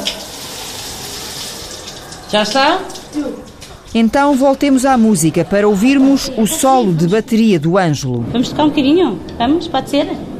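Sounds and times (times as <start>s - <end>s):
shower water running during bath: 0.0s - 7.0s
speech: 2.3s - 10.3s.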